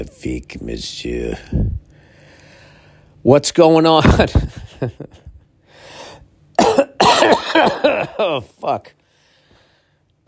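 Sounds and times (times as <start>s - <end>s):
speech: 0.0s - 1.6s, 3.2s - 5.2s, 7.6s - 9.0s
person with a lingering cough coughing harshly: 6.6s - 8.5s.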